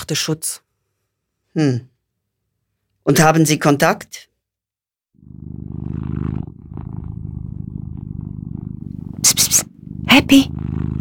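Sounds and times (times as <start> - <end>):
speech: 0.1 - 0.6, 1.5 - 1.9, 3.1 - 4.3, 5.3 - 7.1, 9.2 - 10.9
domestic cat purring: 5.1 - 10.9.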